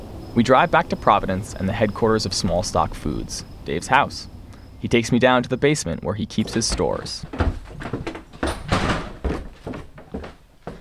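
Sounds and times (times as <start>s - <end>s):
speech: 0.4s - 8.2s
heavy freezer door being pulled open: 6.4s - 9.9s
soft knocks: 6.4s - 10.7s
thuds, rattles and clunks of a swinging door: 6.4s - 10.7s.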